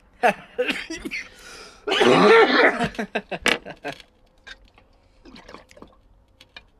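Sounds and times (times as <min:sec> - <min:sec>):
laughter: 0:01.9 - 0:04.0
water bubbling through a new bong filled with too much water: 0:05.2 - 0:06.0.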